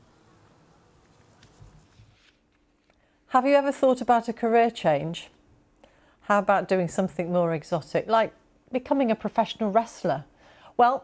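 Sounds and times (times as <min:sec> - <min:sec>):
bumblebees buzzing around lavender outdoors: 0:00.0 - 0:02.0
speech: 0:03.3 - 0:05.4, 0:06.3 - 0:11.0.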